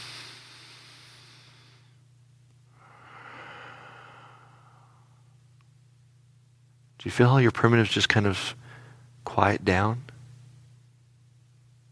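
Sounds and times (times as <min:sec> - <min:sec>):
deep slow breathing in and out: 0:00.0 - 0:02.0, 0:02.7 - 0:05.4, 0:08.6 - 0:09.1
faint low hum: 0:00.0 - 0:11.9
speech: 0:07.0 - 0:08.6, 0:09.3 - 0:10.1.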